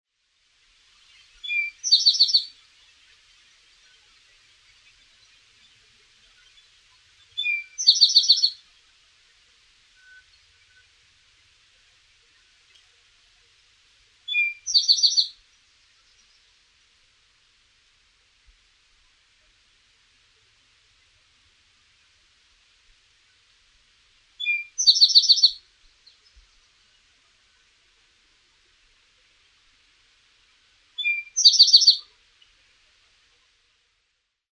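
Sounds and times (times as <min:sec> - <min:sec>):
Eastern towhee calling: 0:01.4 - 0:02.6, 0:07.4 - 0:08.6, 0:14.3 - 0:15.4, 0:24.4 - 0:26.2, 0:31.0 - 0:32.2.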